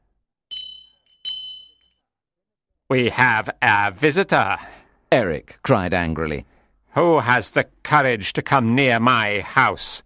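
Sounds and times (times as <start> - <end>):
bell ringing: 0.5 - 2.0
speech: 2.9 - 10.0.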